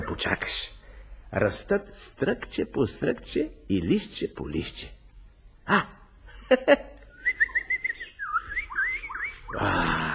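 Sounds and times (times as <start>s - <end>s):
speech: 0.2s - 5.0s, 5.7s - 6.9s, 9.5s - 10.1s
robin singing in a garden: 7.1s - 10.1s.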